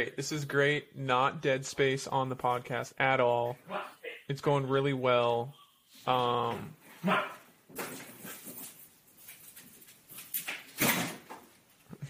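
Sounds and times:
speech: 0.0s - 8.1s
dog barking: 7.0s - 7.4s
dog paws scuffling while running across floor: 7.7s - 10.7s.

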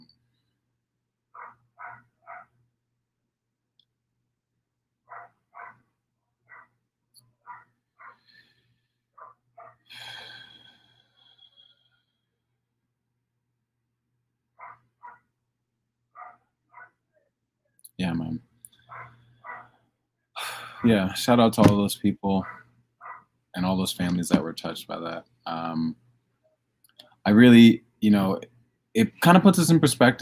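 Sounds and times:
dog barking: 1.4s - 2.5s, 5.1s - 5.8s, 6.5s - 6.7s, 7.4s - 8.2s, 9.2s - 9.8s, 14.6s - 15.2s, 16.2s - 17.0s, 18.9s - 19.8s, 22.4s - 23.2s
breathy noise: 7.5s - 12.4s, 18.7s - 21.8s
speech: 20.8s - 22.6s, 23.6s - 26.0s, 27.2s - 30.1s.

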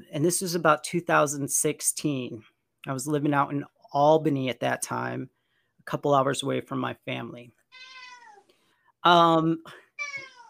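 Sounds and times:
speech: 0.1s - 7.9s, 9.0s - 10.3s
visiting cat meowing and yowling: 7.7s - 8.5s, 10.0s - 10.4s.

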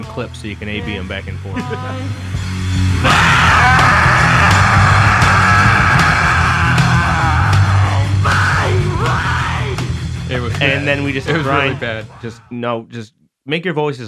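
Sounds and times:
speech: 0.1s - 3.8s, 10.6s - 14.0s
loud distorted music: 0.7s - 12.5s
laughter: 0.8s - 2.2s, 10.4s - 12.8s
strained high-pitched screamed singing vocals: 3.0s - 9.8s.

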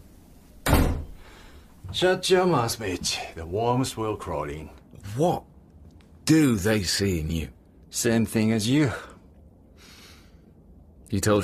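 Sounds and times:
door closing as someone leaves: 0.6s - 1.2s
speech: 1.9s - 5.5s, 6.3s - 9.1s, 11.1s - 11.4s.

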